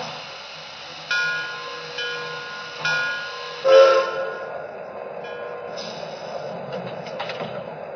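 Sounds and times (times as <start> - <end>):
passenger train rumbling along the rails: 0.0 - 7.9
train wheels clacking over track joints: 6.6 - 7.8.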